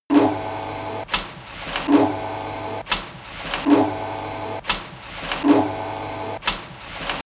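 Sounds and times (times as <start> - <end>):
electric mechanical industry machine: 0.1 - 7.2.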